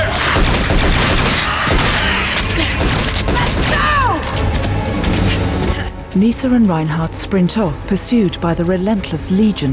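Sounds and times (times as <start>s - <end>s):
dense sustained gunfire: 0.1s - 5.5s
speech: 6.1s - 9.7s.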